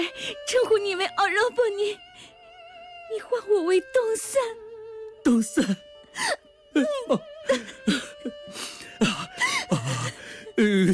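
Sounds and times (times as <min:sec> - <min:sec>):
speech: 0:00.0 - 0:02.1, 0:03.1 - 0:04.6, 0:05.2 - 0:10.0, 0:10.6 - 0:10.9
young woman sobbing and whimpering: 0:05.5 - 0:10.9.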